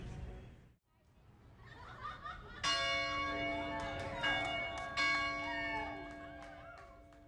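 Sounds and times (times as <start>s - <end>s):
people laughing: 1.5s - 4.6s
large bell ringing outdoors downtown amid tailgating: 2.6s - 7.2s.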